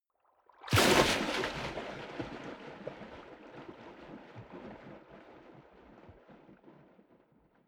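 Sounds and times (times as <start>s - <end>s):
waves splashing hard: 0.7s - 2.1s.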